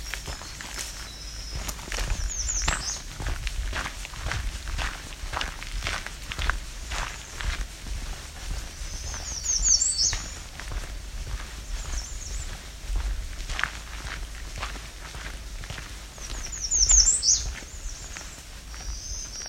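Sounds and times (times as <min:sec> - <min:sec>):
American redstart and black-throated green warbler singing: 0:00.0 - 0:03.4, 0:06.9 - 0:07.7, 0:08.5 - 0:12.7, 0:16.1 - 0:19.4
low outdoor hum: 0:00.0 - 0:19.4
rustling footsteps: 0:00.0 - 0:19.4.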